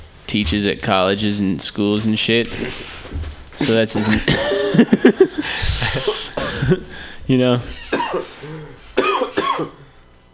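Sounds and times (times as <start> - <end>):
speech: 0.3 - 8.8, 9.6 - 9.8
person coughing: 3.6 - 4.8, 5.6 - 7.0, 7.8 - 9.9
laughter: 3.8 - 7.1.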